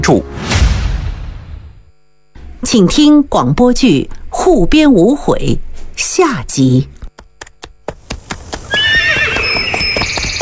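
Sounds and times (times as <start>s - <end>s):
speech: 0.0s - 0.5s, 2.6s - 7.0s
ridden horses' hooves clip-clopping: 7.2s - 10.4s
horse neighing: 8.6s - 10.4s.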